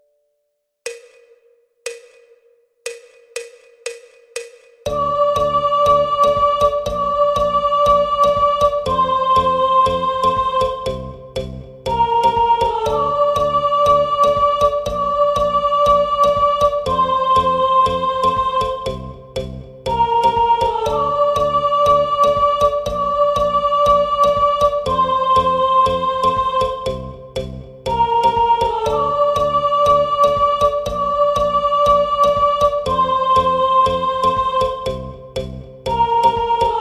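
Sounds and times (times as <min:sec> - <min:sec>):
person singing interlude first voice part: 0:04.9 - 0:11.0, 0:11.9 - 0:19.1, 0:19.9 - 0:27.0, 0:27.9 - 0:35.0, 0:35.9 - 0:36.7.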